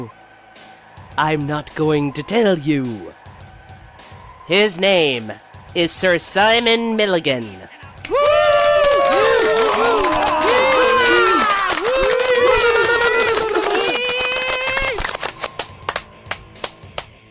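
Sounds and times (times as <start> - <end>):
speech: 0.0 - 3.2, 4.5 - 8.2
loud crowd cheering and whooping: 8.0 - 15.5
scattered sharp handclaps: 8.0 - 17.2.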